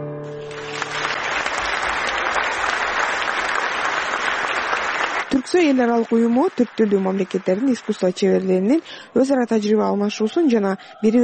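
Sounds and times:
concert audience applauding after opera arias: 0.3s - 8.9s
speech: 5.5s - 11.2s.

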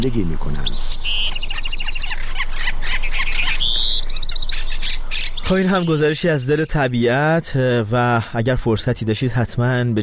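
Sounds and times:
speech: 0.0s - 1.1s, 5.5s - 10.0s
chorus of birds calling and squawking in nature: 0.0s - 7.1s
rapid repeated chirping trills: 0.0s - 7.1s.

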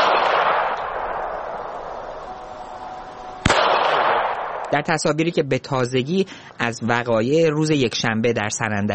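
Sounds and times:
gunshot fired at protesters: 0.0s - 2.2s, 3.4s - 4.8s
speech: 4.7s - 8.9s.

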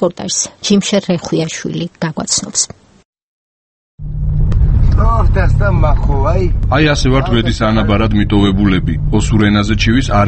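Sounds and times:
speech: 0.0s - 2.8s, 5.0s - 10.2s
car driving along a potholed road: 4.0s - 10.2s.

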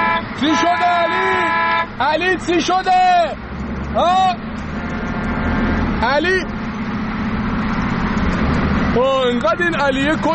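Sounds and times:
car horn honk: 0.0s - 2.1s
road and engine rumble inside a moving vehicle: 0.0s - 10.3s
speech: 0.4s - 1.4s, 2.0s - 4.5s, 6.0s - 6.6s, 9.0s - 10.3s.

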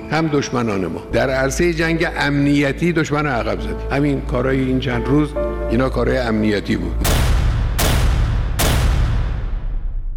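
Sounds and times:
speech: 0.1s - 7.2s
sharp gunshots with long decay in the street: 7.0s - 10.0s.

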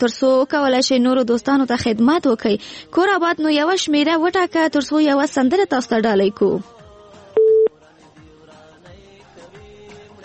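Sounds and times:
speech: 0.0s - 6.8s
telephone busy tone after a dropped call: 7.4s - 7.7s.

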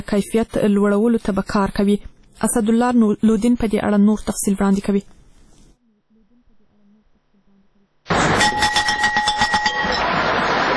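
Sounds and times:
speech: 0.1s - 5.2s
school bell ringing to mark the start of a new school year: 8.1s - 10.4s.

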